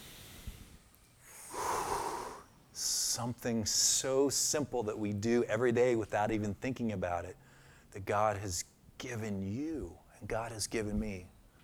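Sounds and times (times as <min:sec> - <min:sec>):
group of people taking a deep breath together: 0:00.0 - 0:02.5, 0:07.4 - 0:07.9
speech: 0:02.8 - 0:11.4.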